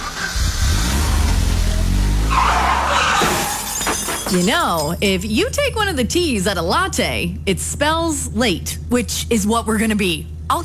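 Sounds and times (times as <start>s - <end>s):
car engine revving: 0.0s - 3.2s
car tires screeching in a harsh skid in an accident: 0.0s - 3.7s
speech: 4.3s - 10.6s.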